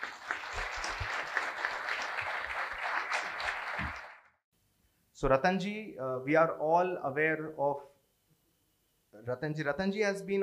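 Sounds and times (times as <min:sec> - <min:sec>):
crowd applauding: 0:00.0 - 0:04.4
speech: 0:05.2 - 0:07.9, 0:09.2 - 0:10.4.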